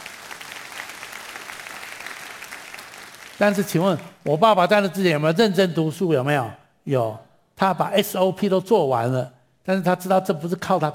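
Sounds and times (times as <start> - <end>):
audience applauding: 0.0 - 4.2
speech: 3.4 - 10.9.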